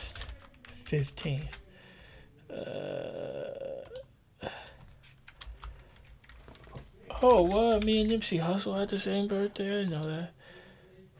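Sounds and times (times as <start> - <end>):
computer keyboard typing: 0.0 - 1.6, 3.8 - 8.3
speech: 0.9 - 1.6, 2.5 - 3.1, 7.2 - 10.4.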